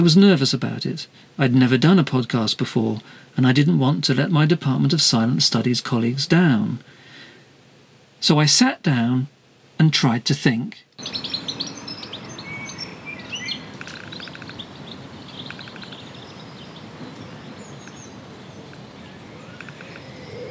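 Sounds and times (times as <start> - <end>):
speech: 0.0 - 7.0, 8.2 - 11.4
steady soft breeze in a garden in South Mimms: 0.0 - 20.4
birds chirping and singing in a garden in South Mimms: 11.0 - 20.4.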